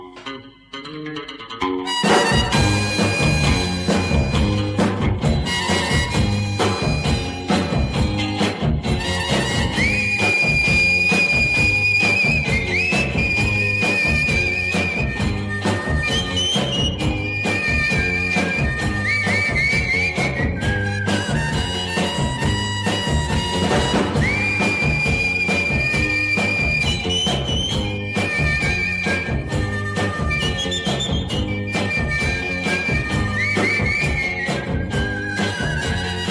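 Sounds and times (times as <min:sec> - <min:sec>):
band groove of a 1966 song: 0:00.0 - 0:36.2
rhythmic whistled melody: 0:01.9 - 0:36.2.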